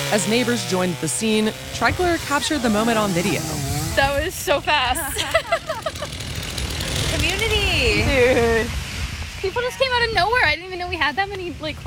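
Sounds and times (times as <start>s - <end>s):
chainsaw bucking a fallen tree to clear a road lane: 0.0s - 4.4s, 5.5s - 7.8s
speech: 0.1s - 6.2s, 7.2s - 8.8s, 9.4s - 11.8s
laughter: 4.8s - 6.4s, 7.9s - 8.7s.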